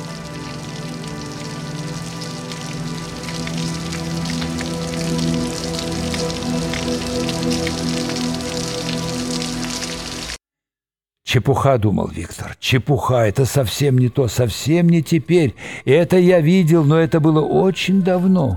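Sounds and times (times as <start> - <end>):
heavy rain pouring: 0.0 - 10.4
speech: 11.3 - 18.5.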